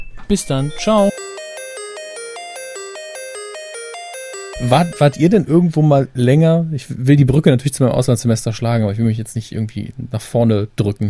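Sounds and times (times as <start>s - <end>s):
speech: 0.3s - 1.2s, 4.6s - 11.0s
electronic phone ringtone for an incoming call: 0.5s - 5.4s.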